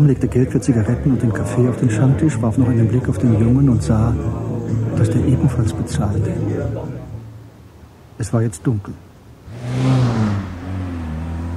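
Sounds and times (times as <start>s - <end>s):
speech: 0.0s - 7.0s, 8.2s - 9.1s, 9.7s - 10.2s
car driving past at night: 9.4s - 11.5s.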